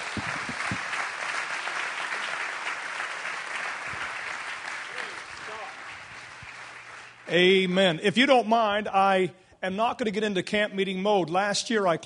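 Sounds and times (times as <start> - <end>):
audience applause: 0.0 - 7.3
speech: 7.3 - 12.0.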